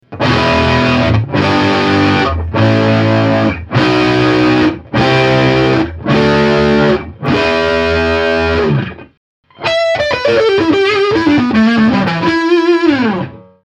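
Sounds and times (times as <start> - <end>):
overdriven Stratocaster electric guitar with aluminium neck: 0.0 - 13.6.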